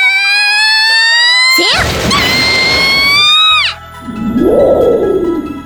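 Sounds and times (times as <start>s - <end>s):
high drawn-out scream: 0.1s - 5.5s
loud lightning strike thunder crash: 1.8s - 3.3s.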